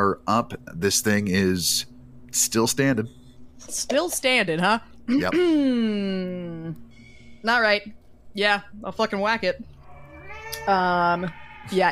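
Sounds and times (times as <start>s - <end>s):
speech: 0.0s - 9.7s, 10.6s - 11.9s
cat yowling: 9.8s - 11.9s.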